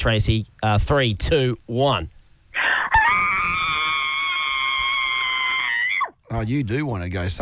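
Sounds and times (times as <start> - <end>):
speech: 0.0 - 2.2, 6.3 - 7.3
long piercing high-pitched woman scream: 2.6 - 6.1.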